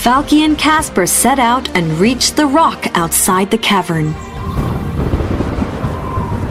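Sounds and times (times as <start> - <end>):
speech: 0.0 - 4.8
wind-like roar of a thunderstorm: 4.0 - 6.4
thunderstorm with steady heavy low rumble: 4.1 - 6.4.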